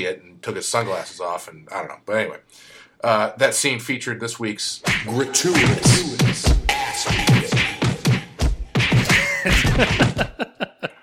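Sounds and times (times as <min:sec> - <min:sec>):
speech: 0:00.0 - 0:07.5, 0:09.8 - 0:10.1
heavy punch impacts, meaty thuds and whacks: 0:04.9 - 0:10.3
laughter: 0:09.0 - 0:11.0.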